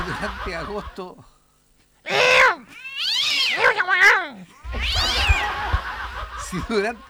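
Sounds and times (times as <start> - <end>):
laughter: 0.0 - 1.2, 4.5 - 7.0
speech: 0.2 - 1.4, 6.5 - 7.0
cats fighting on a roof yowling and caterwauling: 2.1 - 6.4.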